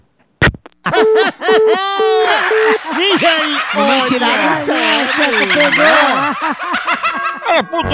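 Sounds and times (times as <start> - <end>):
laughter: 0.8 - 7.9
person imitating a clucking hen: 1.0 - 3.0, 3.7 - 6.3
speech: 1.1 - 7.9.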